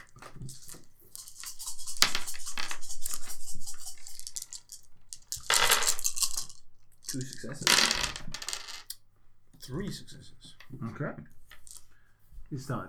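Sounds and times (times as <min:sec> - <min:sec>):
dice clattering and rattling against a hard surface: 0:00.2 - 0:08.9, 0:11.4 - 0:11.9
speech: 0:07.1 - 0:08.4, 0:09.7 - 0:11.4, 0:12.5 - 0:12.8.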